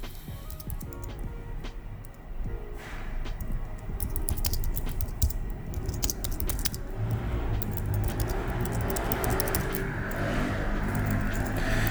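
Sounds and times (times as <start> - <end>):
rapid typing on a computer keyboard: 0.0 - 2.6, 3.2 - 11.8.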